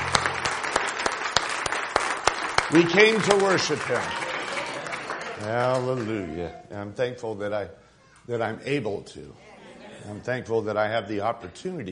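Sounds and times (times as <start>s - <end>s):
congregation clapping hands during a worship service: 0.0s - 6.4s
speech: 2.7s - 4.3s, 5.4s - 11.9s.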